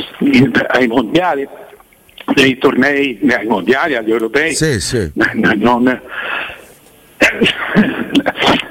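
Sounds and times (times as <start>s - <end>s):
speech: 0.2s - 1.6s, 2.3s - 6.5s, 7.3s - 8.6s
short sharp vocal bursts: 4.5s - 5.2s
voice sounds: 4.5s - 5.3s
person sneezing after breathy build-up: 4.6s - 5.2s.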